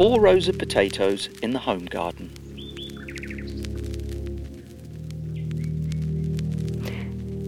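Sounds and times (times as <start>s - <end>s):
speech: 0.0s - 2.4s
nightingale singing in trills, clicks and whistles: 0.0s - 3.9s, 4.5s - 6.4s.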